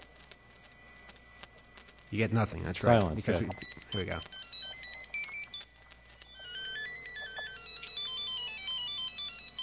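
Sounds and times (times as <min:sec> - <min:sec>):
speech: 0:02.1 - 0:04.4
new mobile phone ringtone with electronic melody: 0:03.5 - 0:05.7, 0:06.3 - 0:09.6.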